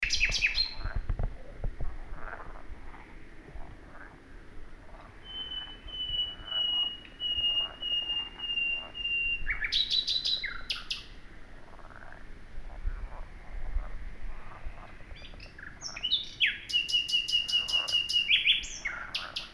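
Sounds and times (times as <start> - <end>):
Common nightingale Luscinia megarhynchos song: 0.0 - 1.0, 4.9 - 11.2, 14.5 - 19.5
steady low background noise: 0.0 - 19.5.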